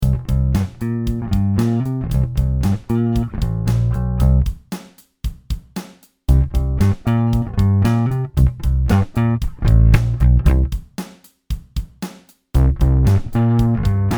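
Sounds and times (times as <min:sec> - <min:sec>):
passive P bass played with a pick through tube grind and overdrive: 0:00.0 - 0:04.4, 0:06.3 - 0:10.7, 0:12.6 - 0:14.1.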